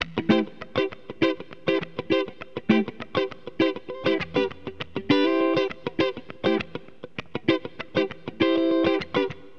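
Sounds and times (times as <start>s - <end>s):
funk guitar playing: 0.0s - 9.5s.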